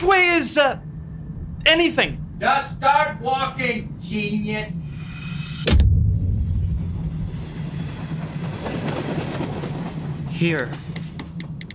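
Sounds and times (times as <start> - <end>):
speech: 0.0 - 0.9, 1.6 - 4.8, 10.4 - 10.8
train rolling along rails with rhythmic clatter: 5.9 - 11.7.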